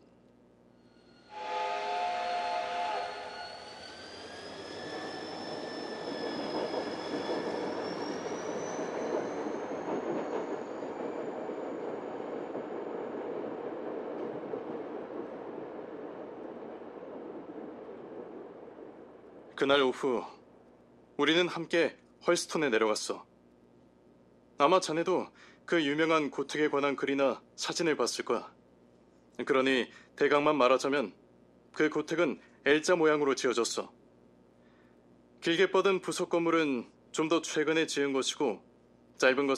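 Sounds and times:
steam train whistle with gliding upward tones: 0.8 - 8.1
steady rumbling hiss of a steam train rolling along: 1.6 - 20.6
speech: 19.6 - 20.3, 21.2 - 23.3, 24.6 - 28.6, 29.4 - 34.0, 35.4 - 39.5.

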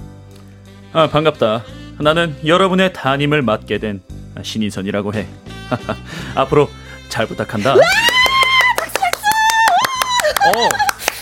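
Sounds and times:
speech: 0.9 - 8.1, 10.4 - 10.8
high excited wordless voice squealing and whooping: 7.8 - 10.9
student clapping in a middle school classroom: 7.9 - 11.1
laughter: 10.0 - 11.1.

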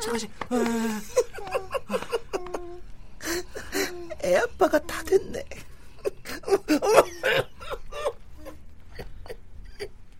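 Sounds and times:
speech: 0.1 - 1.1, 4.3 - 5.5
person coughing breathlessly after laughing: 6.4 - 8.2.

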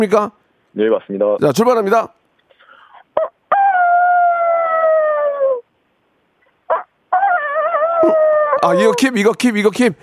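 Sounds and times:
speech: 0.0 - 2.2, 8.0 - 10.0
phone caller's voice imitating a rooster crowing: 3.2 - 5.7, 6.7 - 9.2
short sharp yelp: 6.7 - 9.3.

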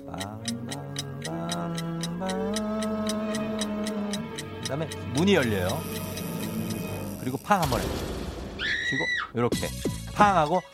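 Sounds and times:
speech: 0.0 - 0.6, 4.7 - 6.0, 7.3 - 8.1, 8.9 - 10.7
clock ticking: 0.0 - 8.0, 9.6 - 10.7
sustained gliding musical tone: 1.6 - 7.6.

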